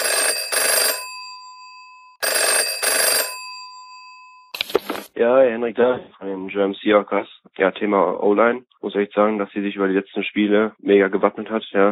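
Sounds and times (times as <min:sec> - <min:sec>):
telephone ringing with bright trilling rings: 0:00.0 - 0:05.1
speech: 0:05.2 - 0:11.9.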